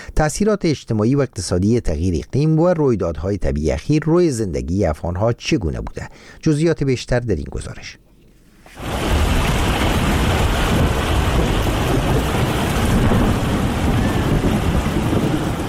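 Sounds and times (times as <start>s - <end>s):
speech: 0.2s - 8.0s
heavy rain pouring: 8.7s - 15.6s
low rumbles of thunder: 8.8s - 15.6s.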